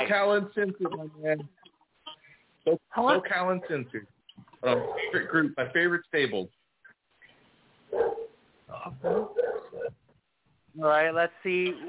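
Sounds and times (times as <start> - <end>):
speech: 0.0 - 1.7, 2.6 - 6.6, 7.9 - 10.0, 10.8 - 11.8
dog barking and yipping: 4.8 - 5.2, 7.9 - 8.4, 9.0 - 9.9.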